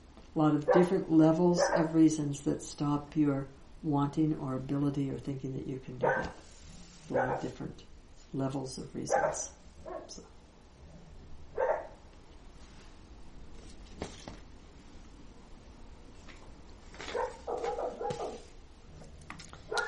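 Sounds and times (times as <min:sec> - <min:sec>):
speech: 0:00.4 - 0:06.5, 0:07.1 - 0:10.4
odd high-pitched dog bark: 0:06.0 - 0:06.4, 0:07.2 - 0:07.5, 0:11.6 - 0:12.0, 0:17.1 - 0:18.4, 0:19.7 - 0:19.8.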